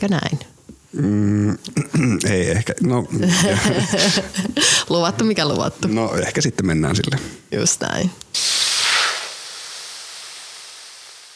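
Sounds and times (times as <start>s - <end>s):
speech: 0.0s - 8.6s
laughter: 3.0s - 4.9s
grill cooking burgers sizzling: 8.3s - 11.3s.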